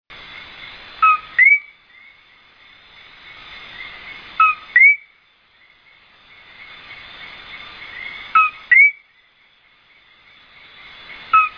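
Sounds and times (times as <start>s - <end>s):
Eleutherodactylus coqui calls in El Yunque National Forest Puerto Rico: 0.3s - 11.5s.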